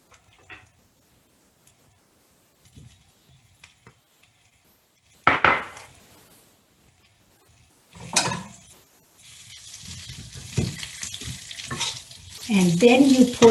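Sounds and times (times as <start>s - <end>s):
potatoes tipped into a hot cooking pot sizzling and frying: 0.0s - 13.4s
speech: 12.5s - 13.4s.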